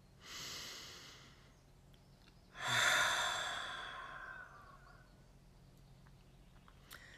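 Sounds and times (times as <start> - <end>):
slow deep breathing close to the microphone: 0.2 - 1.6, 2.6 - 5.2.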